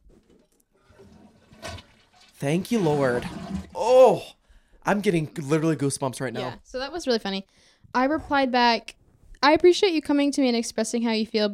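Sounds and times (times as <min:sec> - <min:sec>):
toilet flushing: 0:00.8 - 0:04.2
speech: 0:02.4 - 0:11.5.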